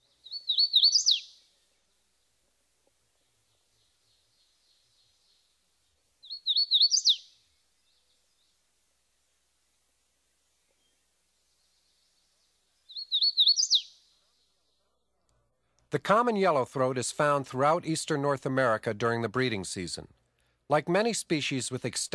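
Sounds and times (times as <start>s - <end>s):
hooded warbler singing: 0.1s - 1.5s, 6.2s - 8.0s, 12.8s - 14.1s
speech: 15.9s - 22.1s.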